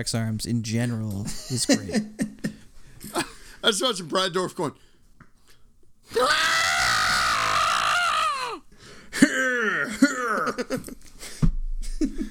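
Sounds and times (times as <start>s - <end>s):
speech: 0.0s - 2.3s, 3.1s - 4.9s, 6.1s - 6.5s
person imitating a villain's screams and grunts: 6.1s - 8.6s, 9.2s - 10.6s.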